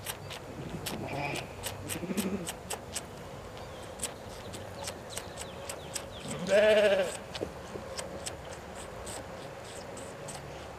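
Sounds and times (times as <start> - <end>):
low background noise: 0.0 - 10.7
sheep bleating: 6.3 - 7.2.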